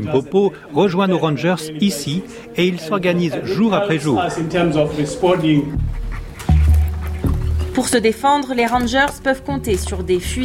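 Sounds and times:
speech: 0:00.0 - 0:06.0, 0:07.8 - 0:10.4
tracking dog trained to follow poachers panting, in a park in Limpopo: 0:04.2 - 0:08.7.

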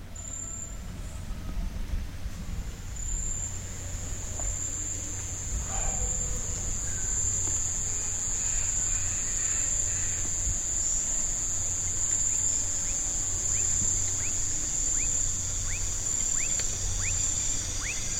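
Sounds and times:
shrill drone of cicadas or crickets in a forest at dusk: 0:00.0 - 0:01.5, 0:02.7 - 0:18.1
low rumble: 0:00.0 - 0:18.1
faint chirps and whistles of nocturnal birds: 0:04.4 - 0:18.1.

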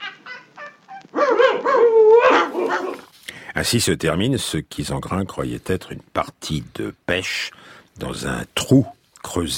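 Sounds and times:
hunters' dog barking and yelping: 0:00.0 - 0:03.1
speech: 0:03.6 - 0:09.5.

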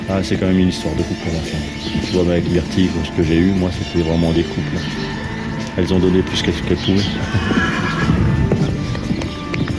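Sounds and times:
speech: 0:00.1 - 0:07.8
horse hooves clip-clopping on soft ground in a riding arena: 0:00.9 - 0:09.7
horse whinnying in a riding arena: 0:07.1 - 0:08.6.

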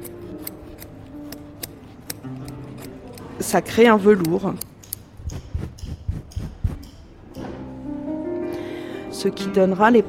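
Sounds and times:
curved scissors snipping through carpet pile loops: 0:00.0 - 0:07.0
speech: 0:03.4 - 0:04.7, 0:09.2 - 0:10.0.

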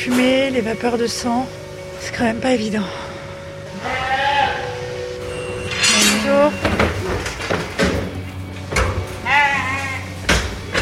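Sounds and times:
speech: 0:00.0 - 0:03.1, 0:06.3 - 0:06.9
ewes bleating: 0:03.7 - 0:05.0, 0:09.2 - 0:10.2
clattering knocks and bangs: 0:05.7 - 0:09.2.

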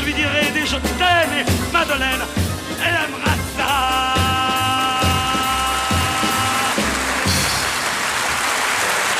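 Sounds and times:
speech: 0:00.1 - 0:03.9
large concert audience applauding: 0:05.0 - 0:09.1.

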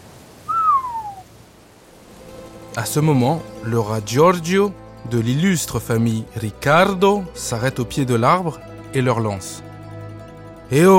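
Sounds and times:
loud clear whistled note sliding downward in pitch: 0:00.5 - 0:01.2
speech: 0:02.8 - 0:09.7, 0:10.7 - 0:10.9.

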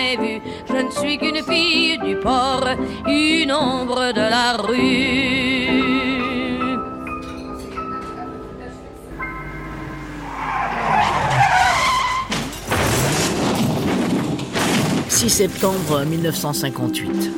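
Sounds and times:
speech: 0:00.0 - 0:05.4, 0:15.2 - 0:17.3
music: 0:00.0 - 0:10.6, 0:14.4 - 0:17.3
car tires screeching in a long skid: 0:09.5 - 0:13.9
heavy car crash: 0:09.5 - 0:16.5
clattering crunching impact noise: 0:10.7 - 0:16.6.

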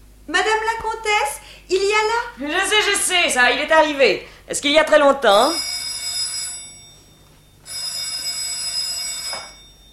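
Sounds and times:
speech: 0:00.4 - 0:05.7
old telephone bell ringing for an incoming call: 0:05.4 - 0:09.9.

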